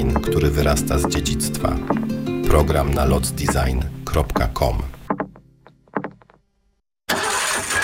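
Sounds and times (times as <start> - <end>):
speech: 0.0 - 4.9
car engine cranking and starting and running: 7.1 - 7.8.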